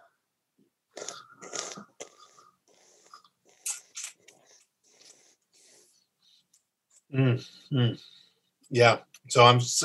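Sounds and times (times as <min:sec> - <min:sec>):
person slurping olive oil while tasting it: 0:00.9 - 0:05.3
speech: 0:07.1 - 0:09.8.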